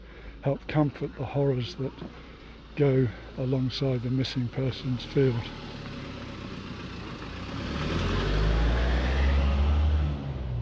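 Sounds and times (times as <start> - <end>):
speech: 0.4 - 5.8
car passing by on a road beside a small field: 5.4 - 10.5.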